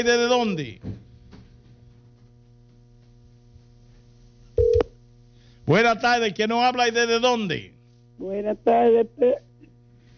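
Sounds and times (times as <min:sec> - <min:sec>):
speech: 0:00.0 - 0:00.9, 0:05.7 - 0:09.5
faint low hum: 0:00.0 - 0:10.1
telephone line beep as a caller is connected: 0:04.6 - 0:04.9.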